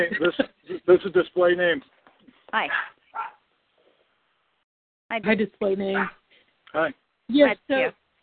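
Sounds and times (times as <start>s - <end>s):
speech: 0.0s - 3.3s, 5.1s - 8.0s
hiss: 0.0s - 8.2s
dog yelping: 2.6s - 3.5s
dog barking: 2.7s - 3.5s, 6.0s - 6.2s.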